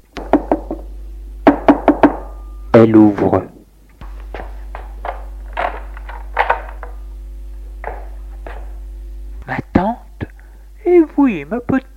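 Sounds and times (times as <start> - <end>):
steady low hum: 0.0 - 11.9
knocking on a wooden front door of a house: 0.2 - 2.2
speech: 2.8 - 3.6, 11.5 - 11.8.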